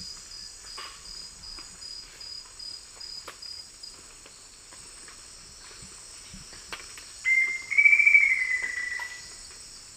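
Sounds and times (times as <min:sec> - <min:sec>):
black-faced antthrush song in eastern lowlands of South America: 0:07.3 - 0:09.4.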